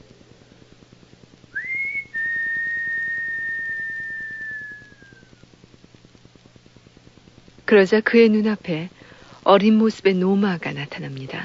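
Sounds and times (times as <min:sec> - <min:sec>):
man whistling on a windy street: 0:01.6 - 0:05.4
speech: 0:07.7 - 0:11.4.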